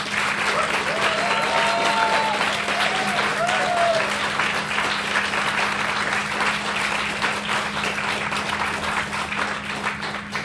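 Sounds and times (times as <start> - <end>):
audience applause for performers of plays: 0.0 - 10.4
faint whoops: 0.5 - 4.2.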